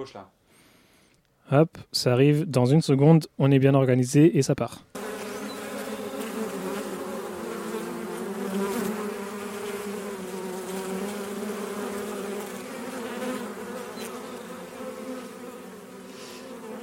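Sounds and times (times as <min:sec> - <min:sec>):
speech: 0:00.0 - 0:00.4, 0:01.5 - 0:04.9
swarm of bees buzzing in Mexico: 0:05.0 - 0:16.8.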